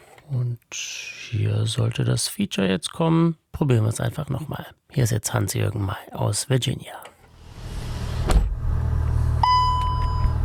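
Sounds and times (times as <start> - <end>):
speech: 0.3 - 7.1
car driving along a road with steady low road and engine rumble: 7.3 - 10.4
thump: 7.6 - 8.7
sustained electronic beep tone: 9.4 - 10.4.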